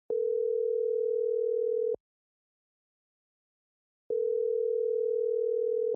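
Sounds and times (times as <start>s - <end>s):
phone ringing: 0.1s - 2.0s, 4.1s - 5.9s.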